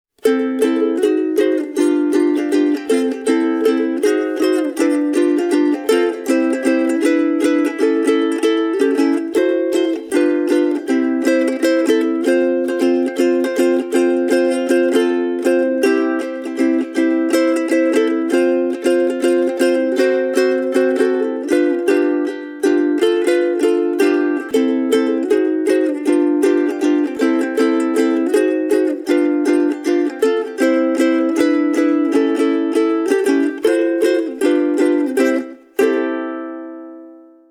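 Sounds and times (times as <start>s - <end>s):
Martin 0X Bamboo acoustic guitar solo: 0.2s - 37.4s.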